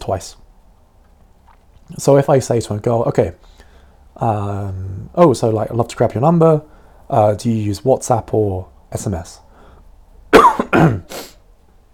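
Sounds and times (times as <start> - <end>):
speech: 0.0 - 0.4, 1.9 - 3.5, 4.2 - 9.4, 10.3 - 11.3
ill person coughing harshly: 10.4 - 11.4.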